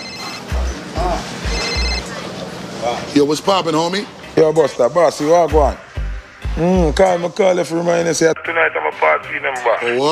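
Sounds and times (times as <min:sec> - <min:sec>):
bright electronic phone ringtone: 0:00.0 - 0:02.2
speech: 0:03.1 - 0:05.8, 0:06.6 - 0:10.1.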